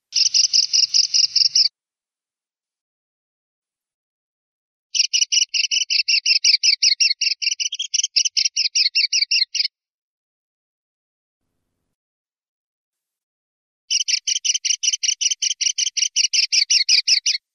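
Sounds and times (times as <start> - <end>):
kestrels calling: 0.1 - 1.7, 5.0 - 9.7, 13.9 - 17.4.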